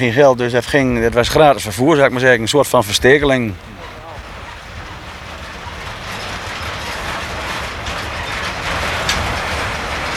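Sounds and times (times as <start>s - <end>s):
speech: 0.0s - 3.7s
train with pusher locomotive at rear rumbling past: 0.0s - 10.1s
metallic squeal: 3.7s - 10.1s.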